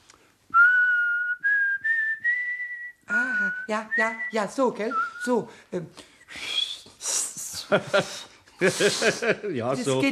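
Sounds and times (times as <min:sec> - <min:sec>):
person whistling through pursed lips: 0:00.5 - 0:05.4, 0:06.3 - 0:07.0
speech: 0:03.7 - 0:06.6, 0:07.7 - 0:10.1
laughter: 0:07.6 - 0:09.7.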